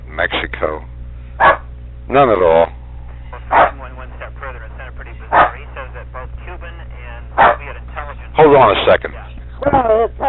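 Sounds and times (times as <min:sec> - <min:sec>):
speech: 0:00.2 - 0:01.5, 0:02.1 - 0:02.8, 0:08.4 - 0:10.2
dog barking loudly: 0:01.4 - 0:01.7, 0:03.5 - 0:03.8, 0:05.3 - 0:05.6, 0:07.4 - 0:07.6.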